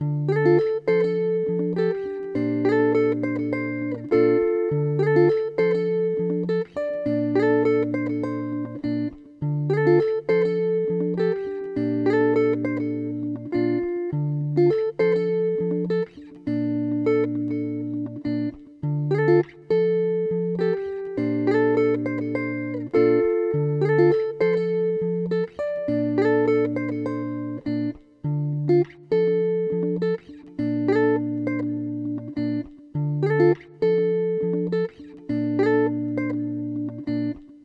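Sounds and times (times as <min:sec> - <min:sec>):
guitar playing in D minor: 0:00.0 - 0:37.6.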